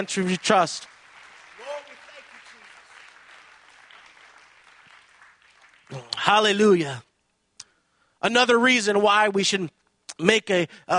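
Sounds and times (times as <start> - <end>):
speech: 0.0 - 0.9, 5.9 - 7.1, 8.2 - 10.9
audience applause: 0.0 - 6.6.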